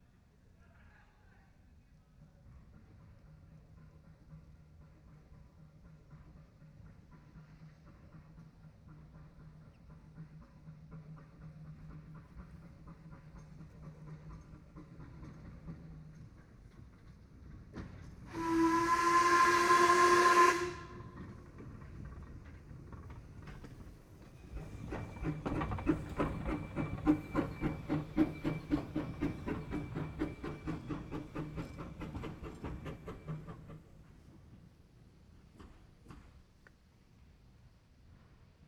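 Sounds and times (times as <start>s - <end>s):
steam train passing by: 2.2s - 38.6s.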